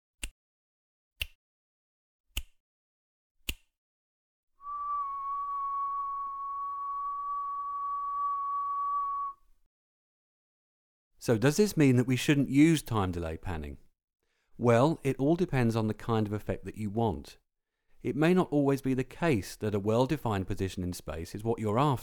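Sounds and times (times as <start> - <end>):
finger clicks: 1.2 - 1.4, 2.3 - 2.6, 3.4 - 3.7
sustained whistled tone: 4.6 - 9.5
speech: 11.2 - 13.8, 14.6 - 17.4, 18.0 - 22.0.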